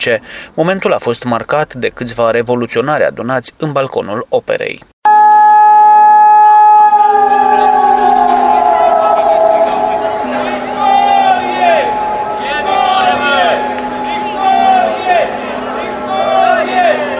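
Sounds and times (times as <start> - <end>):
speech: 0.0 - 4.9
loud steady siren wailing: 5.1 - 17.1
people shouting: 6.8 - 17.1
crowd murmuring and voices chattering: 7.0 - 17.1.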